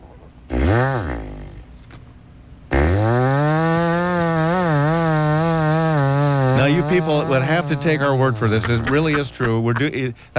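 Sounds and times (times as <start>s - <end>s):
man mimicking a chainsaw with his mouth: 0.5s - 1.7s, 2.7s - 9.4s
speech: 0.7s - 1.3s, 6.9s - 10.3s.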